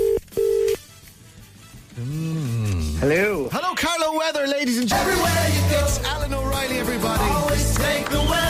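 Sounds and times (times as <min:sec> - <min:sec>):
ringback tone of an outgoing telephone call: 0:00.0 - 0:00.8
speech: 0:03.0 - 0:08.4.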